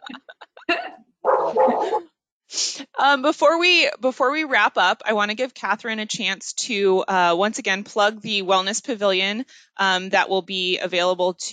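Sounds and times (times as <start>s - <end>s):
dogs barking: 1.2s - 2.0s
speech: 3.0s - 11.5s.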